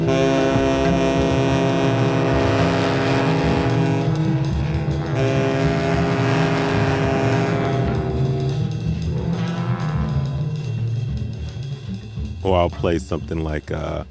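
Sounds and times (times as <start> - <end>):
dense droning music with roaring rumbling texture: 0.0 - 14.0
speech: 12.6 - 14.0.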